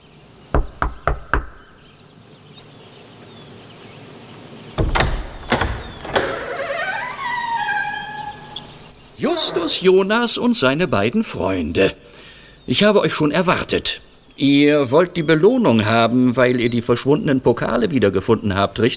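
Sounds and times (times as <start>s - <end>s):
knocking on the door of a dilapidated manor house: 0.6s - 1.6s, 4.8s - 6.5s
faint high chirps: 5.9s - 9.8s
speech: 9.2s - 18.9s.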